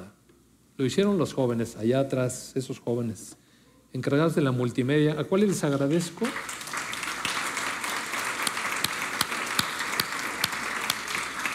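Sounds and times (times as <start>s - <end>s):
speech: 0.8s - 6.6s
crowd applauding: 6.2s - 11.5s.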